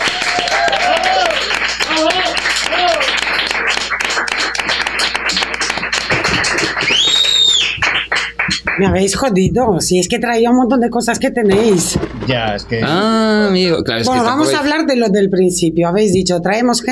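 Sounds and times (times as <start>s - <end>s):
crowd applauding for arriving guest: 0.0s - 9.0s
sharp whistles: 6.9s - 8.1s
speech: 8.8s - 16.9s.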